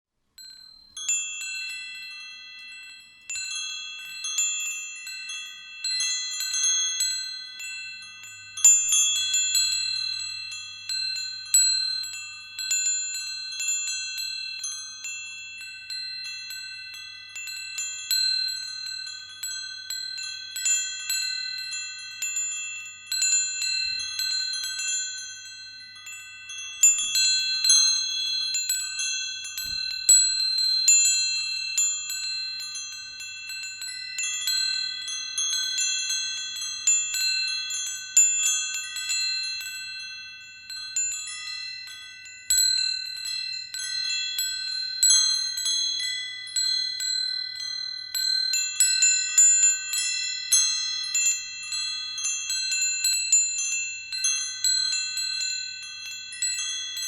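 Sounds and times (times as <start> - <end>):
wind chimes: 0.3 - 57.0.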